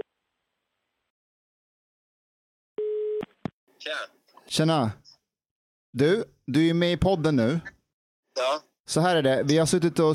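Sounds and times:
telephone ringback tone while calling a number: 2.8 - 3.2
speech: 3.8 - 5.1, 5.9 - 7.8, 8.4 - 10.1.

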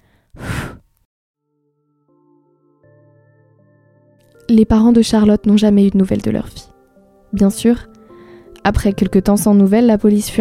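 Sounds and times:
single breath blowing out a candle flame: 0.0 - 0.9
soft sustained musical tones: 1.4 - 10.4
speech: 4.5 - 6.7, 7.3 - 7.9, 8.7 - 10.4.

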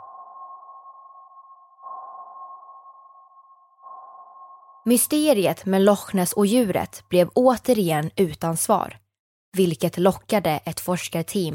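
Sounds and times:
sonar ping from a search boat scanning Loch Ness: 0.0 - 5.1
speech: 4.8 - 11.5.

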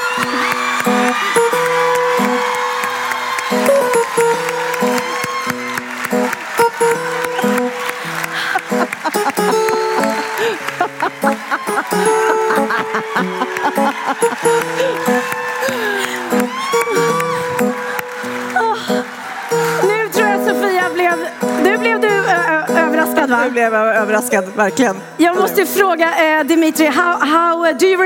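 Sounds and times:
studio audience applause: 0.0 - 23.5
upbeat music track: 0.0 - 28.0
people chuckling: 7.3 - 16.4
speech: 24.2 - 28.0.

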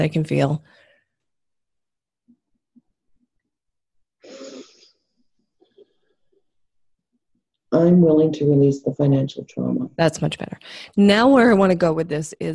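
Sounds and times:
speech: 0.0 - 0.8, 7.8 - 12.5
deep breath in a guided emotional-release exercise: 0.6 - 1.2, 4.2 - 5.0.

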